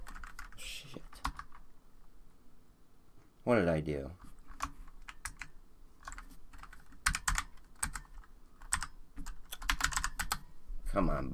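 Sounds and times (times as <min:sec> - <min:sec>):
typing on a computer keyboard: 0:00.0 - 0:01.6, 0:04.4 - 0:10.4
speech: 0:03.4 - 0:04.2, 0:10.9 - 0:11.3.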